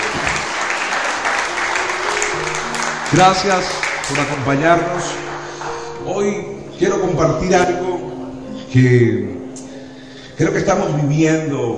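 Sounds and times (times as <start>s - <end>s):
faint voices and cheers: 0.0s - 5.8s
church audience applauding in welcome for first-time visitors: 0.0s - 6.4s
speech: 3.1s - 5.3s, 6.0s - 7.8s, 8.7s - 9.4s, 10.4s - 11.7s.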